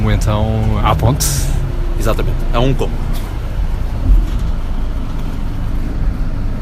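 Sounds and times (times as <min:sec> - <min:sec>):
bus road noise: 0:00.0 - 0:06.5
low bus engine rumble pulling away: 0:00.0 - 0:06.5
speech: 0:00.1 - 0:03.2.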